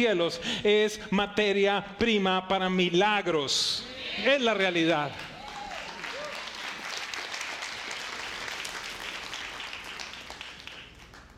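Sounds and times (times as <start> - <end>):
speech: 0.0 - 5.3
audience applause: 5.1 - 11.3.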